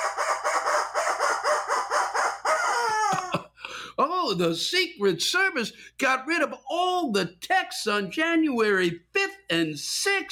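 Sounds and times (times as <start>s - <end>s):
rubber chicken squeaking: 0.0s - 3.3s
speech: 4.3s - 10.3s.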